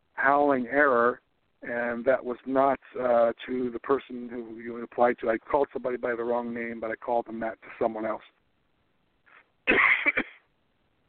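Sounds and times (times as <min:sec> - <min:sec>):
speech: 0:00.2 - 0:08.4, 0:09.7 - 0:10.2
person coughing harshly with a dry, rough edge: 0:09.7 - 0:10.5.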